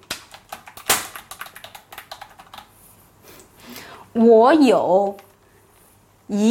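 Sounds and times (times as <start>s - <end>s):
typing on a computer keyboard: 0.0s - 2.7s
speech: 4.2s - 5.2s, 6.3s - 6.4s.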